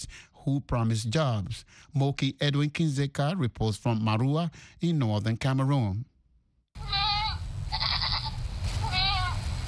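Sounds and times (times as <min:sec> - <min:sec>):
speech: 0:00.0 - 0:06.1
goats bleating in a village along Cameroon's border with Nigeria: 0:06.8 - 0:09.4
outdoor rumble: 0:06.8 - 0:09.6.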